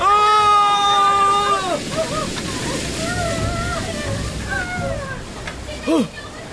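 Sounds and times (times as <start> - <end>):
people crying out and screaming: 0.0 - 5.2
big wave of rushing flood water: 0.0 - 6.5.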